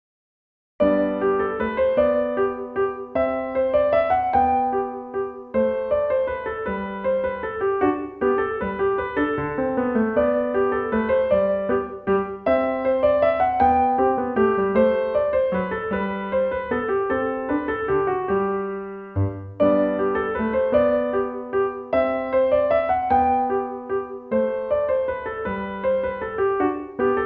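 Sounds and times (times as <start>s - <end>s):
minuet on piano: 0.8s - 27.2s.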